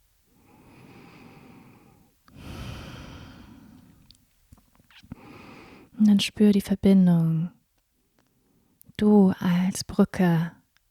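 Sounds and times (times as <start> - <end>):
slow deep breathing in and out: 0.3 - 4.1, 5.1 - 6.0
speech: 6.0 - 7.6, 9.0 - 10.6.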